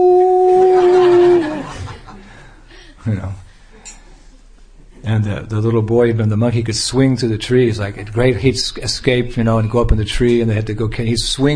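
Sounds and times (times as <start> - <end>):
person imitating a wolf howl: 0.0 - 1.7
laughter: 0.2 - 2.4
speech: 3.1 - 3.4, 5.2 - 11.5.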